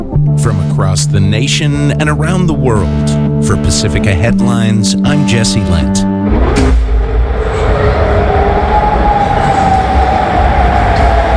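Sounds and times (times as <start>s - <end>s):
speech: 0.2s - 6.8s
air raid siren wailing: 6.2s - 11.3s.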